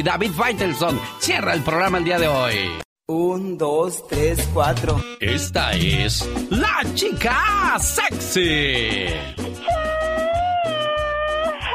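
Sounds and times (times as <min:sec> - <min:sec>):
speech: 0:00.0 - 0:10.0
thumping rhythmic bass beat: 0:04.2 - 0:09.4
cat meowing: 0:09.7 - 0:11.7.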